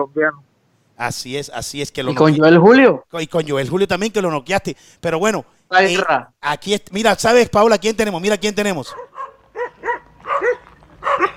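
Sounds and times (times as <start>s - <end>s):
speech: 0.0s - 9.1s
arena crowd in the stands barking like dogs: 8.9s - 11.3s.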